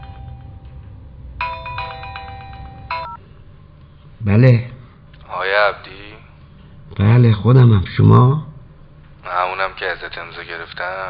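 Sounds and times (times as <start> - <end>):
telephone ringing with an electronic ringtone: 0.0 - 0.7, 1.4 - 3.2
low steady hum: 0.0 - 11.0
speech: 4.2 - 4.7, 7.0 - 8.5, 9.3 - 11.0.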